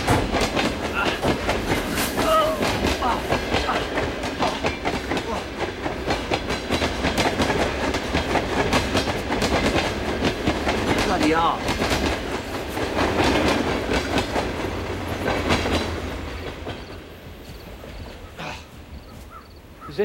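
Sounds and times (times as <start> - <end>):
moving train rumbling along tracks through forest in Siberia: 0.0 - 19.9.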